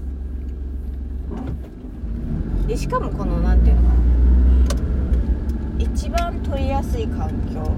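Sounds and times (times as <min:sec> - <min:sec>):
car interior engine and road rumble while driving on a commute: 0:00.0 - 0:07.7
speech: 0:02.7 - 0:04.4, 0:05.8 - 0:07.7.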